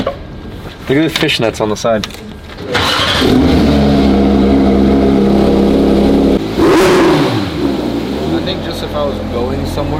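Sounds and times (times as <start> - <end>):
speech: 0.9 - 3.9
car engine droning on a rough road in Cape Town: 2.7 - 9.9.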